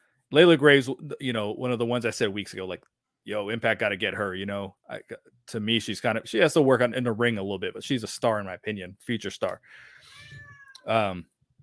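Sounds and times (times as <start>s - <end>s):
speech: 0.3s - 11.3s
cat meowing indoors: 10.0s - 10.9s.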